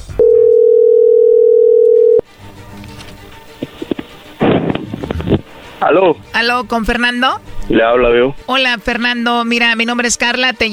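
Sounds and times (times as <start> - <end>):
steady telephone line tone while dialing: 0.2 - 2.3
burst of rustling noise: 2.7 - 5.8
speech: 5.8 - 10.7.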